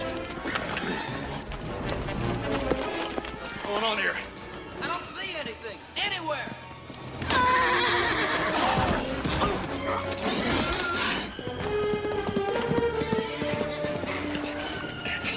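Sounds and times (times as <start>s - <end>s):
agitated horses whinnying loudly: 0.0s - 1.8s, 7.0s - 15.3s
hooves clip-clopping and scuffling: 0.0s - 15.3s
speech: 3.8s - 4.3s.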